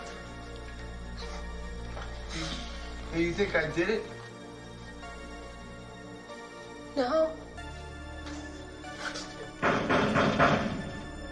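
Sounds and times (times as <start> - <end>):
speech: 2.4 - 4.2, 7.0 - 7.4
someone banging on a door from the inside: 9.5 - 11.1.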